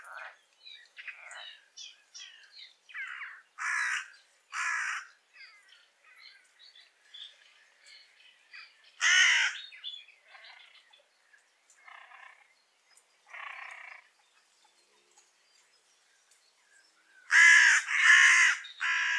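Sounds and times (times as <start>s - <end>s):
carrion crow Corvus corone giving harsh caws: 3.0s - 5.1s, 9.0s - 9.6s, 17.3s - 19.1s.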